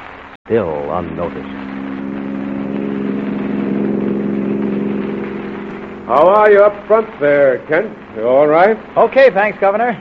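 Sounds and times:
speech: 0.5s - 1.7s, 6.1s - 9.9s
car engine humming while driving up a mountain road: 1.2s - 8.2s.

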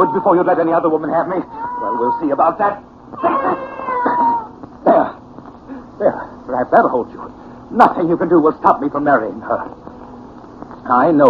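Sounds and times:
cat yowling: 0.0s - 2.5s, 3.1s - 4.6s
speech: 0.0s - 3.6s, 6.0s - 9.8s, 10.9s - 11.2s.

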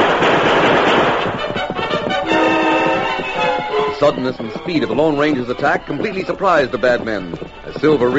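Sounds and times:
gunshots fired at rifles in a Western confrontation: 0.0s - 3.2s
speech: 4.0s - 8.1s.

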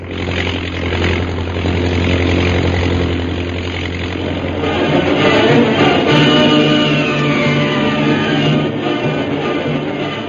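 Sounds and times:
chartered propeller plane engine droning: 0.0s - 10.2s.

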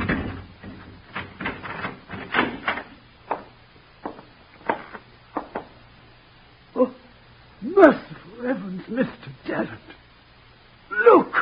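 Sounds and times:
key working a door lock with clicks and clunks: 0.0s - 5.7s
faint low hum: 0.0s - 11.4s
speech: 7.8s - 8.0s, 8.9s - 9.9s.

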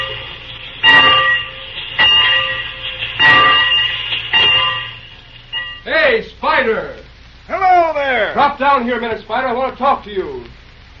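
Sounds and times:
bell clanging: 0.0s - 5.9s
low mechanical rumble: 0.0s - 10.9s
speech: 6.6s - 7.0s, 8.4s - 10.6s.

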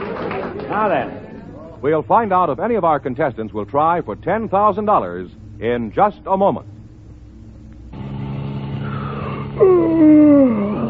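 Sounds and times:
speech: 0.7s - 1.2s, 1.8s - 6.8s
long drawn-out yawn: 8.8s - 10.8s.

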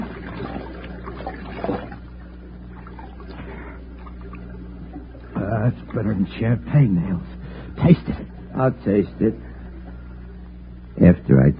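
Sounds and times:
stream water trickling with small bubbling splashes: 0.0s - 6.0s
speech: 5.7s - 9.5s.

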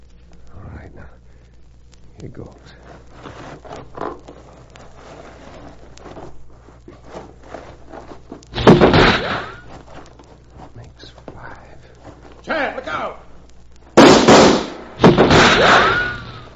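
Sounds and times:
faint rustling: 0.0s - 14.0s, 14.6s - 16.5s
speech: 2.2s - 4.0s
revolver gunshots in a radio drama shootout: 14.0s - 16.3s.

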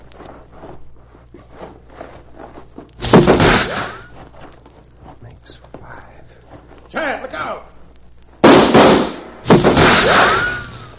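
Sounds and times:
revolver gunshots: 8.4s - 10.9s.

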